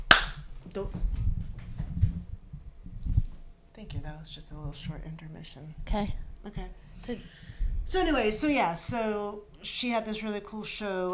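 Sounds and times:
single sharp hand clap: 0.0s - 0.4s
room noise: 0.0s - 0.8s
speech: 0.8s - 1.1s, 4.0s - 11.1s.

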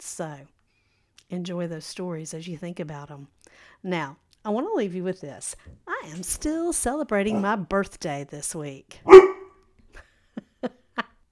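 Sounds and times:
speech: 0.0s - 0.6s, 1.3s - 9.3s
dog barking: 9.1s - 9.6s.

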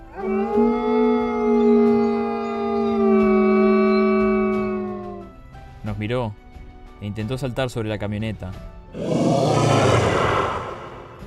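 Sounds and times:
creature howling with rich harmonics: 0.0s - 5.3s, 8.9s - 11.2s
speech: 6.0s - 6.4s, 7.0s - 9.8s.

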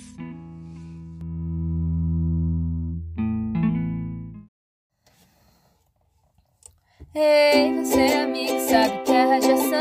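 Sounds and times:
heavily effected distorted instrumental chords of a song intro: 0.0s - 4.4s
speech: 7.2s - 9.7s.

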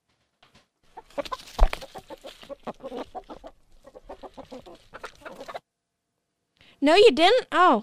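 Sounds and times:
chicken clucking: 0.9s - 5.6s
speech: 6.8s - 7.8s.

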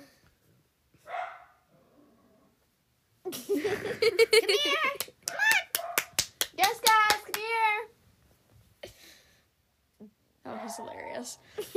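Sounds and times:
faint noise: 0.0s - 11.7s
pet dog barking: 1.1s - 1.7s, 5.3s - 6.2s, 10.5s - 11.0s
laughter: 3.3s - 5.0s
speech: 11.2s - 11.7s.

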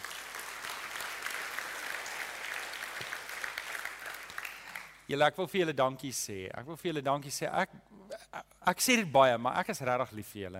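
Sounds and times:
sizable audience applauding: 0.0s - 5.0s
speech: 5.1s - 10.5s.

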